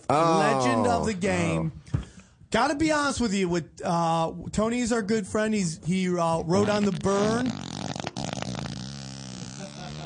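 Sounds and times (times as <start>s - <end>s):
speech: 0.1s - 1.9s, 2.5s - 7.7s
long low buzzing fart: 6.6s - 10.0s.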